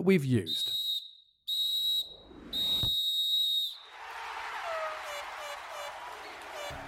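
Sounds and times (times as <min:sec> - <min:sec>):
speech: 0:00.0 - 0:00.8
referee's whistle blowing short shrill blasts and a long one: 0:00.5 - 0:03.8
roaring crowd cheering: 0:03.6 - 0:06.8.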